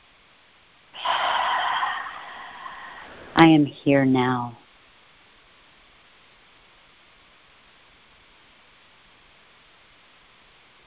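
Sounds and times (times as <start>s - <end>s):
deep breath in a guided breathing exercise: 1.0s - 3.4s
speech: 3.4s - 4.6s.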